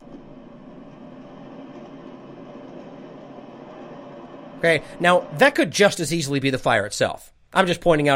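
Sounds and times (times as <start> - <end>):
heavy rumbling roar: 0.0 - 5.8
speech: 4.6 - 8.1.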